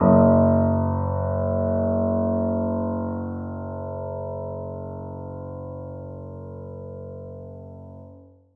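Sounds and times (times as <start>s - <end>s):
grand piano note F sharp 1 played softly: 0.0s - 6.9s.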